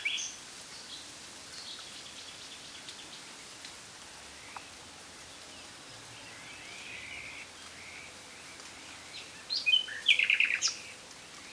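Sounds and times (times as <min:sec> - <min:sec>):
common nightingale Luscinia megarhynchos song: 0:00.0 - 0:02.9, 0:06.2 - 0:11.5.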